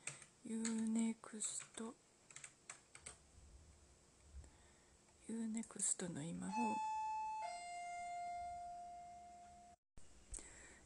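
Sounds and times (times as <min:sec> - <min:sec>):
speech: 0:00.4 - 0:02.1, 0:05.3 - 0:07.0
electronic two-tone doorbell chime inside a detached house: 0:06.5 - 0:09.8.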